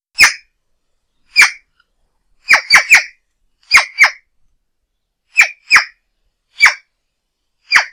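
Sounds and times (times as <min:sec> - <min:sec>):
magpie calling: 0:00.2 - 0:00.5, 0:01.3 - 0:01.7, 0:02.4 - 0:04.3, 0:05.3 - 0:06.9, 0:07.6 - 0:07.9.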